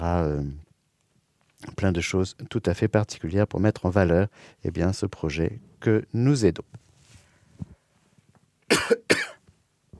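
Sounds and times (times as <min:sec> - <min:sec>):
speech: 0:00.0 - 0:00.6, 0:01.8 - 0:06.8
sharp coughs: 0:08.7 - 0:09.4.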